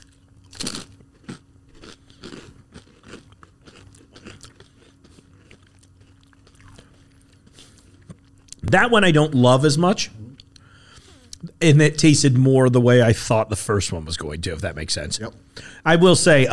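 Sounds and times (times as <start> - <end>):
crunchy chewing of a bite of salmon spread topped with dill: 0.0 - 8.6
speech: 8.7 - 10.2, 11.6 - 16.5.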